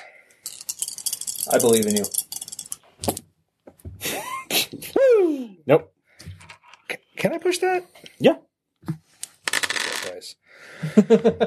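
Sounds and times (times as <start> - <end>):
dice rolling and clattering across a table during a tabletop game: 0.4 - 3.2, 9.4 - 10.2
speech: 1.5 - 2.2, 5.7 - 5.9, 7.5 - 8.5, 10.2 - 11.4.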